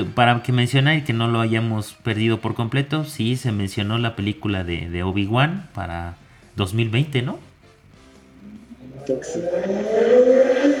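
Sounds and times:
speech: 0.0 - 7.5, 9.1 - 10.6
motorcycle engine revving as the rider readies to head off: 8.5 - 10.7.

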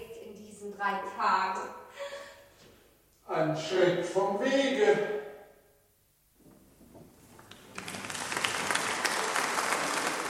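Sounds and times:
speech: 0.7 - 2.1, 3.3 - 5.2
applause after a theatre performance: 7.4 - 10.2.

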